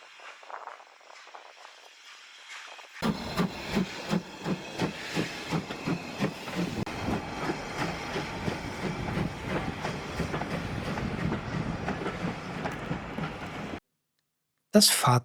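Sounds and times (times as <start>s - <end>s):
steam locomotive hissing: 0.0s - 13.8s
steam locomotive pulling away from Aviemore: 1.6s - 13.8s
speech: 14.8s - 15.2s.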